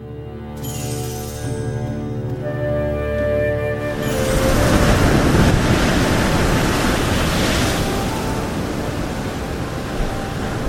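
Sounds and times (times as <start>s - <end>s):
sustained musical tones: 0.0s - 10.6s
stormy ocean waves crashing and surging: 3.7s - 10.6s.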